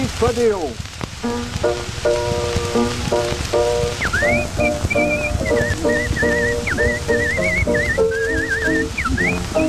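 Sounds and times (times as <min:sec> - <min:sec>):
constant crackling hiss: 0:00.0 - 0:09.6
steady instrumental accompaniment: 0:01.2 - 0:09.6
woman performer whistling a lively tune with trills and warbles: 0:04.0 - 0:09.6.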